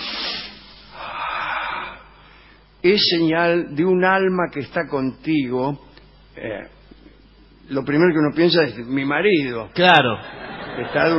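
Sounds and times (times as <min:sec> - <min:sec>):
heavy loud breathing: 0:00.9 - 0:02.8
speech: 0:02.8 - 0:06.8, 0:07.7 - 0:11.1
laughter: 0:10.2 - 0:11.1.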